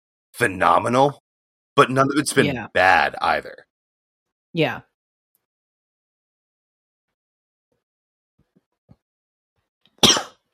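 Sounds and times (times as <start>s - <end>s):
speech: 0.4s - 1.2s, 1.8s - 3.7s, 4.5s - 4.9s
person coughing: 10.0s - 10.4s.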